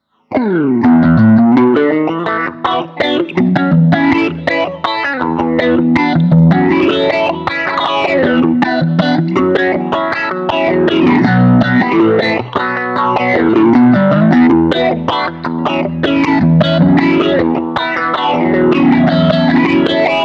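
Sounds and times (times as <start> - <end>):
funk music with phaser effect: 0.2 - 20.2.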